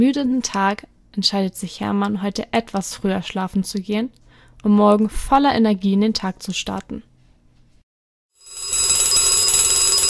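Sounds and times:
speech: 0.0 - 7.1
alarm clock bell ringing: 8.4 - 10.0.

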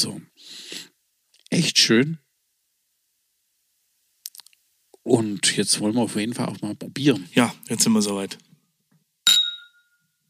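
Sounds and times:
speech: 1.6 - 2.3, 5.0 - 8.5
wine nosing glasses clinking in a toast during a wine hike: 9.3 - 10.0.

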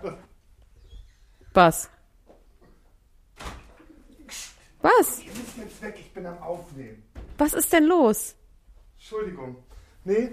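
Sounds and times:
speech: 1.6 - 1.9, 4.8 - 5.2, 5.8 - 8.4, 9.0 - 10.3
pigeons cooing: 3.7 - 4.8.

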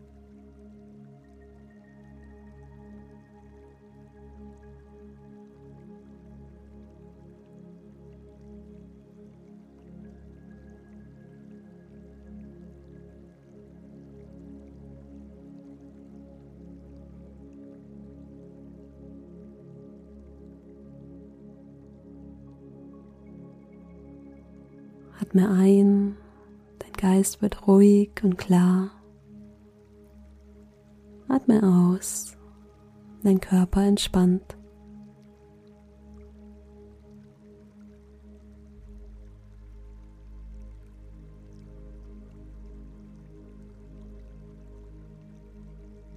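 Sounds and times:
brook babbling with gentle drips: 25.2 - 46.1
speech: 25.3 - 26.2, 27.0 - 29.0, 31.5 - 32.4, 33.2 - 34.6.

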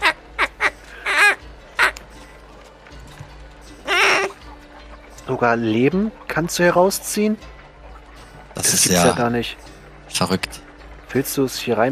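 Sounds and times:
duck quacking: 0.0 - 2.0, 3.8 - 4.4
speech: 5.3 - 7.6, 8.6 - 11.8.

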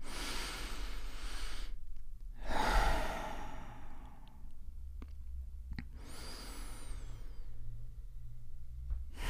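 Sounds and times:
deep breaths in and out during a guided relaxation exercise: 0.0 - 4.6, 5.9 - 8.2, 9.0 - 9.2.

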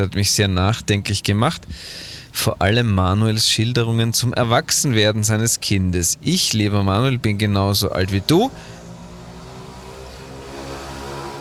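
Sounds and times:
speech: 0.0 - 8.8
mopeds driving past: 8.2 - 11.3.

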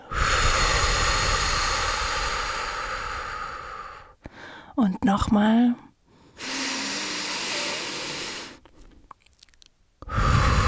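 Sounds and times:
deep breath in through nose and out through mouth: 0.0 - 4.8, 6.1 - 9.0, 10.0 - 10.6
speech: 4.8 - 5.9.

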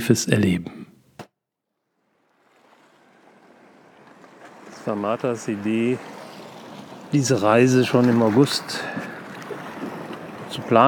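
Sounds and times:
speech: 0.0 - 0.8, 4.8 - 6.2, 7.1 - 9.1, 10.5 - 10.8
ocean waves: 2.0 - 10.8.

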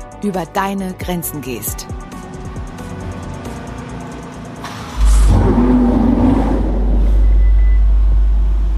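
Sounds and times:
speech: 0.2 - 2.0
Ferrari 488 sports car engine revving: 1.9 - 8.7.

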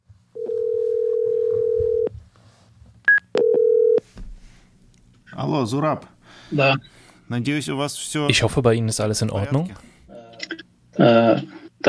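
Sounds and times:
telephone dialing tone of a phone call: 0.4 - 2.1, 3.4 - 4.0
speech: 5.4 - 10.0, 11.0 - 11.8.

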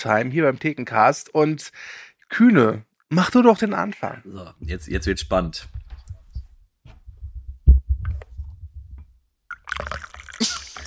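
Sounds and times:
speech: 0.0 - 5.8
handling thumps: 4.6 - 9.2
tea pouring into a cup: 9.5 - 10.8.

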